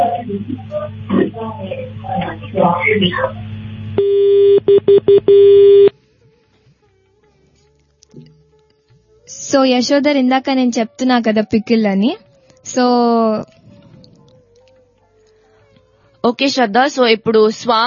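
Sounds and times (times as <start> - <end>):
speech: 0.3 - 6.0, 9.4 - 13.6, 16.2 - 17.8
telephone beep as a call is cut off: 4.0 - 5.9.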